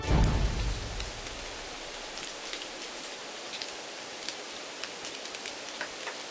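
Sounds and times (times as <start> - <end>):
brief low rumble: 0.0 - 2.3
steady rain falling: 0.0 - 6.2.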